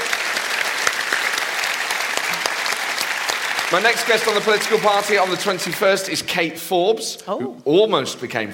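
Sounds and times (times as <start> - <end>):
scattered sharper claps: 0.0 - 5.8
large audience applauding in a reverberant hall: 0.0 - 5.9
speech: 3.7 - 8.5.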